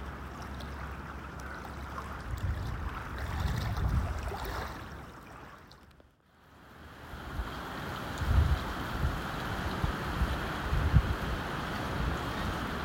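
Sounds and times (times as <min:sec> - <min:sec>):
small wind-driven waves lapping at the shore: 0:00.0 - 0:12.8
gusting wind buffeting the microphone: 0:02.1 - 0:04.6, 0:08.1 - 0:12.8.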